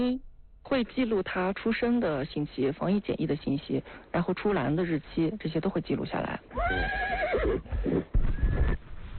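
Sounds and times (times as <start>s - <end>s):
speech: 0.0s - 8.1s
horse whinny: 6.6s - 8.8s.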